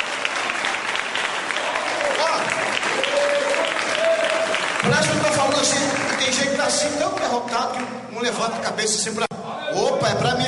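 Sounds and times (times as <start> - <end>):
church audience applauding at a worship service: 0.0 - 7.9
speech: 5.0 - 10.4.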